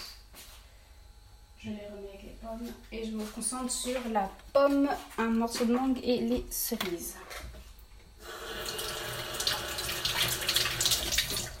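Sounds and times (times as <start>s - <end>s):
speech: 1.6s - 7.4s
running tap water rinsing cherries: 8.2s - 11.5s.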